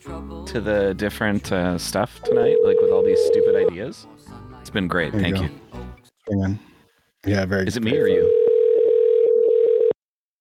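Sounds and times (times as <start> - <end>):
speech: 0.2 - 5.6, 6.3 - 8.4
telephone ringback tone on an outgoing call: 2.3 - 3.7, 7.9 - 10.0.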